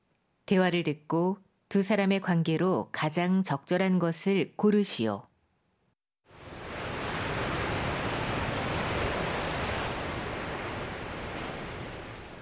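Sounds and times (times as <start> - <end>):
speech: 0.5 - 5.3
ocean waves roaring: 6.3 - 12.4
strong rushing wind: 6.3 - 12.4.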